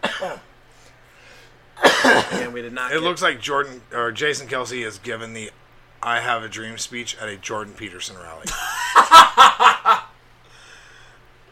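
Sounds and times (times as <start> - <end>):
person coughing: 0.0 - 0.5, 1.8 - 2.6
speech: 0.2 - 0.5, 2.4 - 9.6
person's rough throat-clearing rasp: 1.8 - 2.6
laughter: 8.5 - 10.1.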